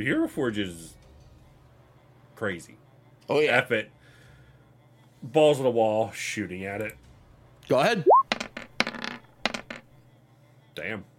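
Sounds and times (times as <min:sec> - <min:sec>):
speech: 0:00.0 - 0:01.0, 0:02.4 - 0:04.0, 0:05.2 - 0:07.0, 0:07.7 - 0:08.2, 0:10.8 - 0:11.1
dice rolling on a hard table: 0:08.2 - 0:10.0.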